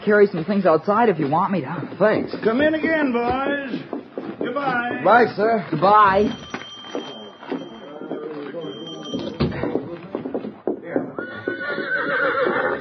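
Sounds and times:
speech: 0.0s - 7.1s
horse whinnying: 11.2s - 12.8s.

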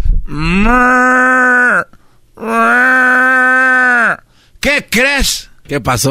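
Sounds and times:
person imitating cows mooing: 0.3s - 4.2s
speech: 0.6s - 0.9s, 4.6s - 6.0s.

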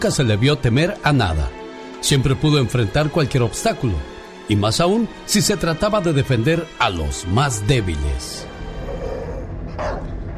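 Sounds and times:
speech: 0.0s - 9.0s
angry dog barking: 8.8s - 10.2s.

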